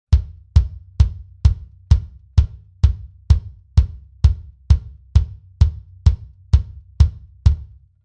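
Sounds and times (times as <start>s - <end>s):
solo bass drum recorded with an MD441 microphone: 0.0s - 8.0s.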